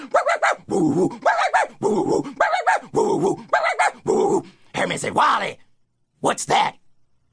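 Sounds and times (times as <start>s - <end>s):
speech: 0.0s - 2.1s, 6.2s - 6.7s
voice imitating two dogs barking and baying: 0.0s - 4.5s.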